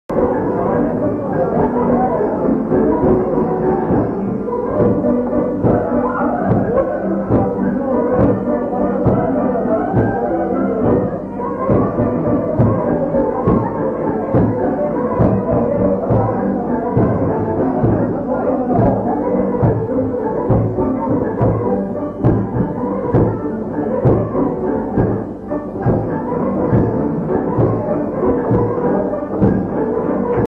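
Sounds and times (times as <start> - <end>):
piano: 0.1 - 30.5.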